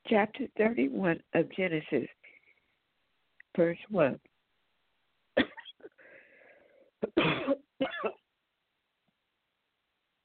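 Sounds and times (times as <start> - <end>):
speech: 0.1 - 2.2, 3.6 - 4.3, 7.0 - 8.2
harsh coughing: 5.4 - 6.0, 7.0 - 8.2
strained wheezing breath: 5.9 - 7.0.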